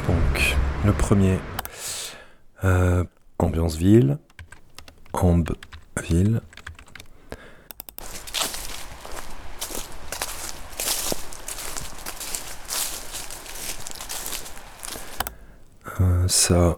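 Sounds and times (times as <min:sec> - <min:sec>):
speech: 0:00.8 - 0:01.5, 0:02.6 - 0:04.3, 0:05.2 - 0:06.5, 0:16.3 - 0:16.7
footsteps walking through grass: 0:08.0 - 0:15.2.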